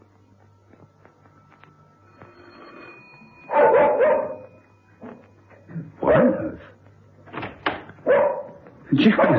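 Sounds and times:
faint low hum: 0:00.0 - 0:09.3
dog barking: 0:03.5 - 0:04.5, 0:06.0 - 0:06.6, 0:08.0 - 0:09.3
speech: 0:09.0 - 0:09.3.

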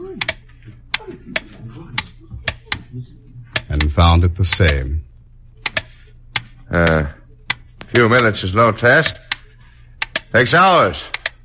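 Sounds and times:
handmade pendulum clock ticking: 0:00.0 - 0:02.9, 0:03.5 - 0:05.0, 0:05.6 - 0:11.4
low murmuring background: 0:00.0 - 0:11.4
speech: 0:04.0 - 0:05.0, 0:06.7 - 0:07.2, 0:07.9 - 0:09.2, 0:10.3 - 0:11.2.

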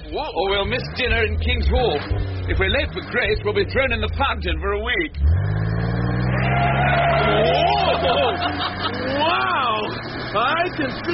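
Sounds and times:
vintage Bentley car engine rumbling and revving as it pulls away: 0:00.0 - 0:11.1
speech: 0:00.1 - 0:05.6, 0:10.3 - 0:11.1
laughter: 0:06.7 - 0:10.1.

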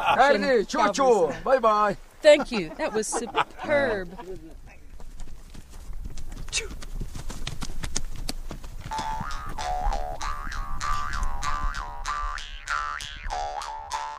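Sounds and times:
laughter: 0:00.0 - 0:01.4, 0:02.2 - 0:04.6
speech: 0:00.1 - 0:04.6, 0:06.5 - 0:06.8
hooves of Mongolian horses being ridden clip-clopping: 0:03.2 - 0:12.5.

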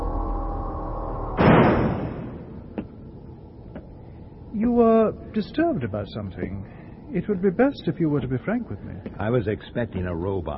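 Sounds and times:
steady low mechanical hum: 0:00.0 - 0:10.5
heavy door being resealed shut: 0:01.4 - 0:02.5
speech: 0:04.6 - 0:10.5.

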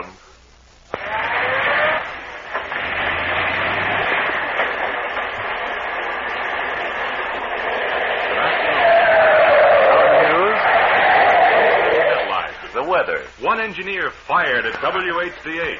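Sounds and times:
car brakes screeching to a stop: 0:00.9 - 0:12.5
steady roar of traffic noise: 0:01.0 - 0:12.8
speech: 0:13.6 - 0:15.7.

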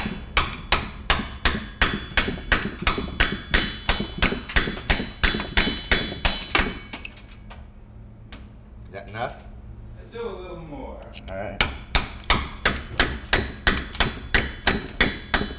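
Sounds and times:
wood carving tools cutting into soft semi-translucent Italian alabaster: 0:00.0 - 0:07.0, 0:11.6 - 0:15.5.

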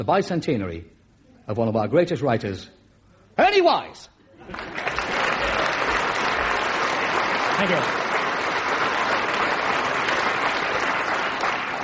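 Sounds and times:
speech: 0:00.0 - 0:02.8, 0:03.4 - 0:04.9, 0:07.6 - 0:08.0
sustained applause from a large audience: 0:04.4 - 0:11.8.

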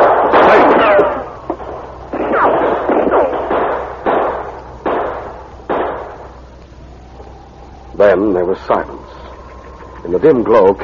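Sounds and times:
loud gunshots with booming echo: 0:00.0 - 0:06.3
speech: 0:08.1 - 0:09.2, 0:10.0 - 0:10.8.

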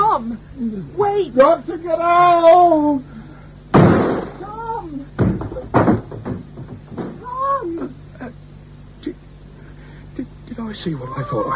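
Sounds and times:
speech: 0:00.3 - 0:03.2, 0:10.6 - 0:11.5
door smashed open: 0:03.7 - 0:04.5, 0:05.2 - 0:07.3
quieter knocks: 0:05.2 - 0:07.3
wavering yowl-like cries: 0:10.8 - 0:11.5.

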